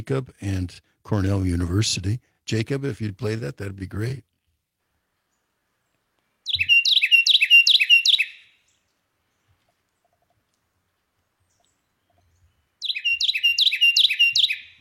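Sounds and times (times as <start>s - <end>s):
speech: 0.0s - 4.3s
Carolina wren singing: 6.4s - 10.2s, 11.4s - 14.7s.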